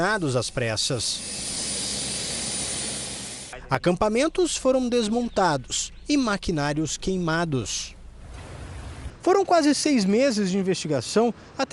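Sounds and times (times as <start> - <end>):
speech: 0.0 - 1.6, 3.7 - 8.0, 9.2 - 11.7
helicopter engine and rotors roaring: 1.2 - 3.6.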